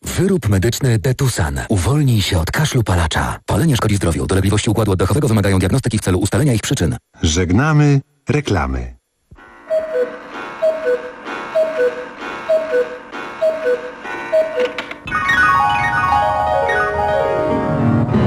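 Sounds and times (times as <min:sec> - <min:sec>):
speech: 0:00.2 - 0:09.0
bright sweeping tonal sound: 0:09.4 - 0:17.6
radio station clock ticking before the hour with tonal pips: 0:09.7 - 0:15.0.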